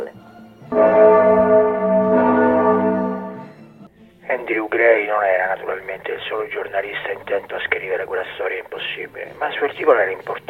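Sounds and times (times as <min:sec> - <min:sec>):
bell chime marking the exact time in the afternoon: 0:00.7 - 0:03.7
speech: 0:04.8 - 0:10.4.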